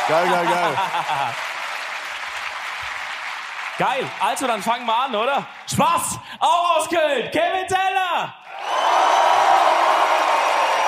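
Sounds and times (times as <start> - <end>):
applause and cheering from a large live crowd: 0.0 - 6.6, 8.5 - 10.8
laughter: 0.1 - 1.4
speech: 0.1 - 1.5, 3.8 - 9.1.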